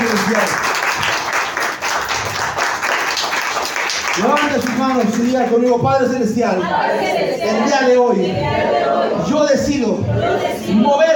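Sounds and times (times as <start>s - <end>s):
crowd applauding loudly: 0.0s - 5.7s
speech: 0.3s - 0.6s, 4.2s - 11.1s.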